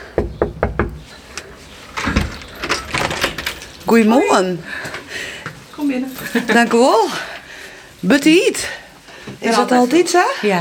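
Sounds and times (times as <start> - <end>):
knocking on a front door: 0.1 - 1.1
clattering and rustling: 1.0 - 5.1
speech: 3.9 - 4.9, 5.8 - 7.3, 8.0 - 10.5.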